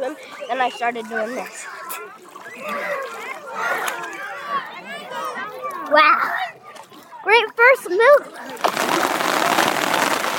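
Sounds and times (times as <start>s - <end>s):
speech: 0.0s - 3.9s, 5.9s - 6.4s, 7.2s - 9.1s
steady hissing rain of fine drops in Grafton: 8.6s - 10.3s.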